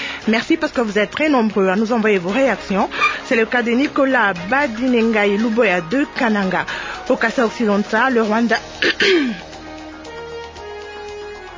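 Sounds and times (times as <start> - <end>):
speech: 0.2 - 9.5
single loud brief cough: 8.8 - 9.4.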